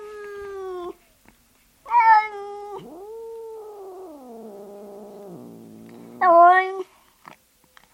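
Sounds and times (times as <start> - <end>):
cat wailing and moaning: 1.9 - 6.7.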